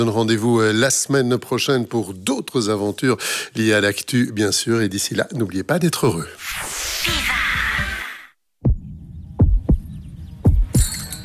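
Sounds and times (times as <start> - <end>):
speech: 0.0 - 7.2
short burst of noisy sound: 6.4 - 8.4
heartbeat sound effect with deep low lub-dub thumps: 8.6 - 10.8.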